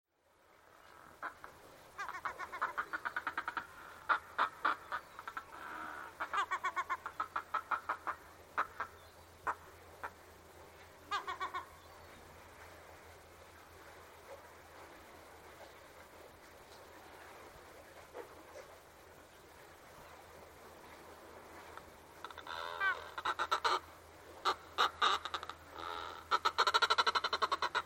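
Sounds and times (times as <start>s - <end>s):
Northern Fulmar cackling on the Isle of May: 0.8s - 10.2s, 11.0s - 11.9s, 21.6s - 27.8s.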